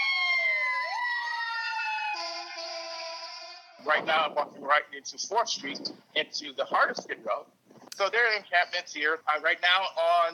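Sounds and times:
ambulance siren wailing on the street: 0:00.0 - 0:03.9
speech: 0:03.8 - 0:10.3.

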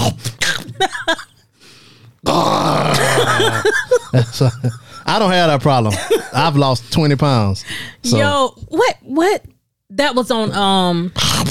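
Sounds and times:
speech: 0:00.8 - 0:01.2, 0:04.1 - 0:11.4
person mimicking a sleep apnea choking breath: 0:02.2 - 0:03.6
laughter: 0:02.9 - 0:05.1.

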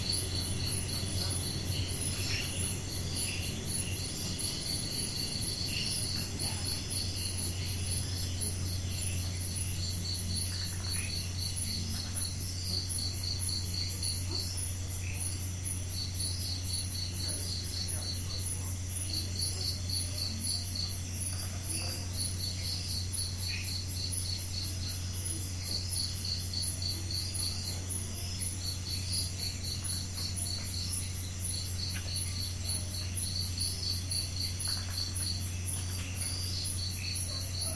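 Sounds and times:
air-conditioning drone: 0:00.0 - 0:10.5
night insects trilling: 0:00.0 - 0:37.7.

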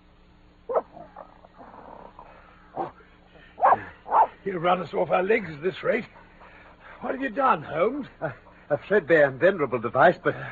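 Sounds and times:
dog on a leather leash yipping and barking: 0:00.7 - 0:02.0, 0:03.6 - 0:04.4
dog on a leather leash whining: 0:00.7 - 0:03.0, 0:03.6 - 0:04.4
speech: 0:04.4 - 0:06.2, 0:07.0 - 0:10.5.

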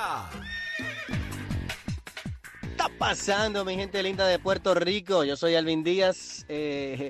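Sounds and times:
speech: 0:00.0 - 0:00.6, 0:02.8 - 0:07.0
horse neighing: 0:00.2 - 0:01.6.

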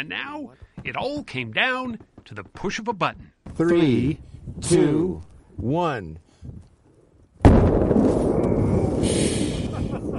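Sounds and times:
speech: 0:00.0 - 0:06.6
giant aerial firework exploding: 0:07.4 - 0:09.6
heavy roar and crackle of firework: 0:07.5 - 0:10.1.

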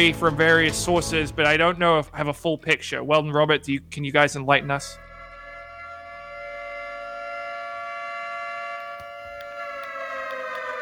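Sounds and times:
speech: 0:00.0 - 0:05.0
siren wailing: 0:04.6 - 0:10.7.

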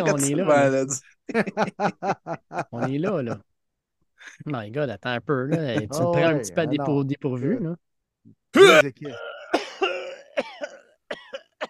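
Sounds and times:
speech: 0:00.0 - 0:03.5, 0:04.2 - 0:09.4
laughter: 0:01.3 - 0:03.4
voice imitating retching and vomiting: 0:08.6 - 0:11.6.

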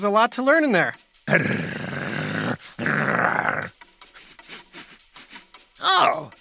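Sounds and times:
speech: 0:00.0 - 0:01.8
low grumbling undertones of dogs: 0:01.3 - 0:03.8
two dogs sniffing each other's rear ends: 0:04.0 - 0:05.8.

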